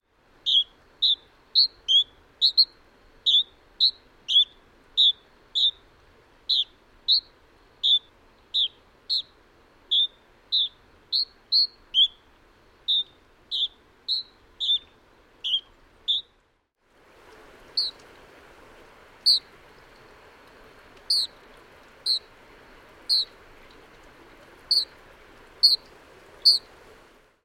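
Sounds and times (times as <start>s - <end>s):
Canyon Wren calling: 0.4s - 5.9s, 6.5s - 16.3s, 17.8s - 18.0s, 19.2s - 19.5s, 21.1s - 21.4s, 22.0s - 22.3s, 23.1s - 23.4s, 24.7s - 25.0s, 25.6s - 26.7s.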